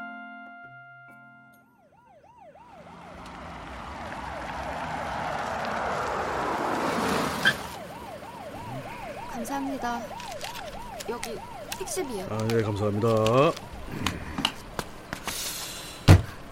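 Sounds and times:
police car siren wailing: 0:01.6 - 0:14.7
broadband traffic rumble: 0:01.9 - 0:16.4
speech: 0:09.5 - 0:10.5, 0:11.1 - 0:14.1.

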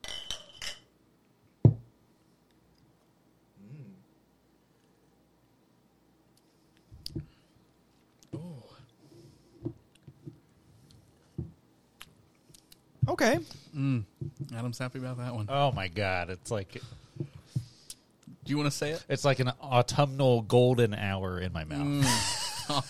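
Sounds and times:
glassware being handled, knocks and clicks: 0:00.0 - 0:00.8
speech: 0:13.2 - 0:17.0, 0:18.5 - 0:22.8.

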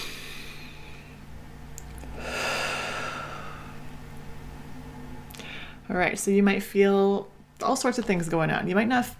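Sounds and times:
deep breath in and out: 0:00.0 - 0:01.2, 0:02.1 - 0:03.9
speech: 0:05.9 - 0:09.1.

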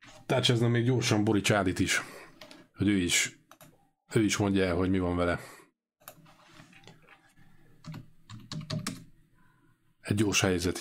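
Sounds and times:
speech: 0:00.3 - 0:02.2, 0:02.8 - 0:03.4, 0:04.1 - 0:05.6, 0:10.1 - 0:10.7
typing a chat message on a computer keyboard: 0:07.8 - 0:09.1.

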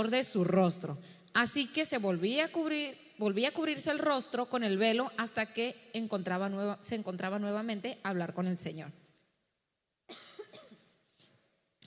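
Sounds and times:
speech: 0:00.0 - 0:09.0
woman allergic to humidity coughing: 0:10.1 - 0:11.0.

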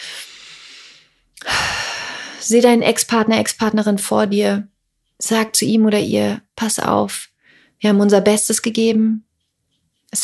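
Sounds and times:
deep breath in and out during a guided relaxation exercise: 0:00.0 - 0:02.4, 0:07.4 - 0:07.8
speech: 0:02.5 - 0:09.3.

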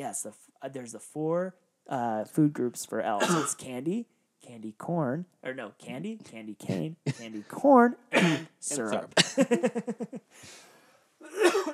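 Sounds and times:
speech: 0:00.0 - 0:11.7
people coughing: 0:03.2 - 0:03.6, 0:06.7 - 0:07.5, 0:08.2 - 0:09.9, 0:11.2 - 0:11.7
laughter: 0:08.9 - 0:10.2.

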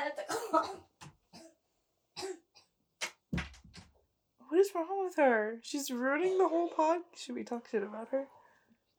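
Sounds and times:
woman coughing heavily: 0:00.2 - 0:01.6, 0:02.2 - 0:02.7
speech: 0:04.7 - 0:08.4.

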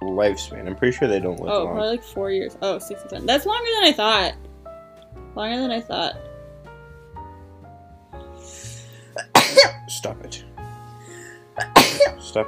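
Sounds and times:
speech: 0:00.2 - 0:04.5, 0:05.4 - 0:06.3, 0:09.9 - 0:10.5, 0:11.6 - 0:12.4
person sneezing loudly: 0:09.2 - 0:09.8, 0:11.6 - 0:12.2.

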